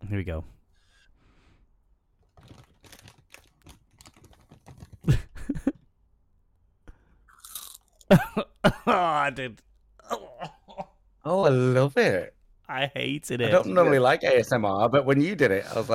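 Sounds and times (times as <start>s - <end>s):
speech: 0.1s - 0.6s, 8.1s - 9.7s, 11.2s - 15.9s
crisps from a long-open packet being eaten: 2.4s - 5.1s, 7.3s - 8.1s.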